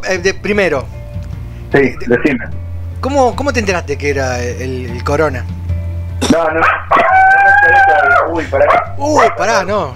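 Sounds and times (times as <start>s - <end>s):
speech: 0.1s - 1.0s, 1.7s - 5.6s, 6.3s - 9.9s
dog howling: 6.5s - 9.5s.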